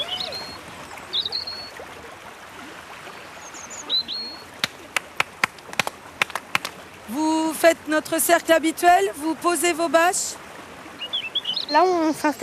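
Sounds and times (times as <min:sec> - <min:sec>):
high bird chirps: 0:00.0 - 0:01.8, 0:03.3 - 0:04.5, 0:11.0 - 0:12.0
small stream babbling: 0:00.0 - 0:12.4
speech: 0:07.6 - 0:10.4, 0:11.7 - 0:12.4.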